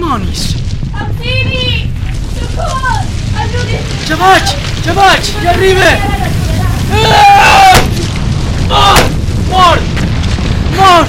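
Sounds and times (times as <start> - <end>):
heavy booming blows to the head: 0.0 - 11.0
rumbling background: 0.0 - 11.0
speech: 0.1 - 1.5, 3.5 - 7.5, 8.7 - 9.9, 10.8 - 11.0
strained shouting and grunting voices: 0.9 - 11.0.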